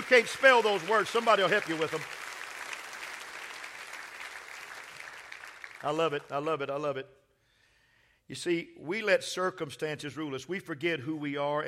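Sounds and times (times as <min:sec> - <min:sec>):
audience clapping hands: 0:00.0 - 0:06.5
speech: 0:00.1 - 0:02.2, 0:05.8 - 0:07.2, 0:08.3 - 0:11.6.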